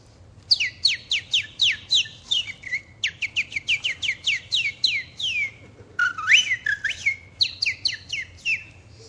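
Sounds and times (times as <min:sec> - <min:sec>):
person whistling chirps imitating sparrows: 0:00.5 - 0:08.8.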